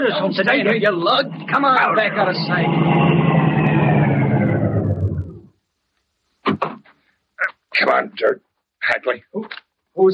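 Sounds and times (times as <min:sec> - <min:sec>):
speech: 0:00.0 - 0:03.4, 0:07.9 - 0:10.1
car engine rumbling as it slows: 0:00.0 - 0:05.5.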